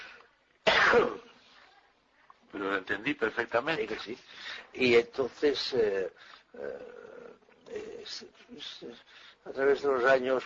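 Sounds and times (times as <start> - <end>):
deliberate performed cough: 0.7 - 1.3
speech: 0.9 - 1.3, 2.5 - 10.4
quiet breath noise: 4.2 - 4.8, 6.1 - 7.3, 9.0 - 9.5.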